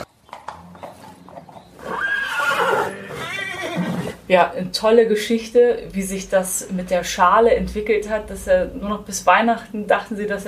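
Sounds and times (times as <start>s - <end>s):
horse hoof clops: 0.0s - 4.1s
horse neighing in a stable: 0.5s - 4.2s
speech: 4.3s - 10.4s.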